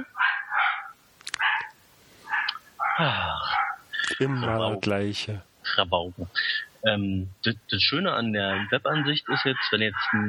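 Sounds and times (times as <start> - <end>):
dogs barking: 0.0 - 4.6, 8.4 - 10.2
speech: 3.0 - 10.2.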